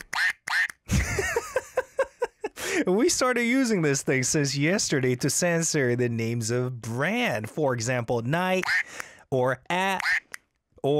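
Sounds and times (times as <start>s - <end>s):
squeaky duck toy squeezed by hand quacking: 0.0s - 0.8s, 8.6s - 8.9s, 10.0s - 10.4s
laughter: 0.9s - 3.0s
speech: 2.8s - 10.2s.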